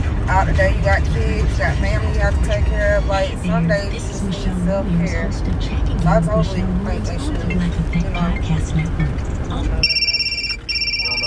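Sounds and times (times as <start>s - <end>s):
activity: 0.0s - 11.2s
low rumbling road noise: 0.0s - 11.2s
speech: 0.4s - 10.1s
bright electronic ringtone for an incoming phone call through a car's system: 9.8s - 11.2s.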